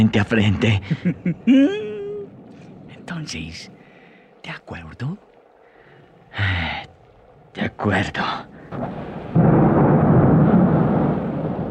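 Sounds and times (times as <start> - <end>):
speech: 0.0 - 1.9, 3.1 - 3.8, 4.4 - 5.3, 6.3 - 6.9, 7.6 - 9.6
loud thunder clap and heavy rumble: 8.7 - 11.6.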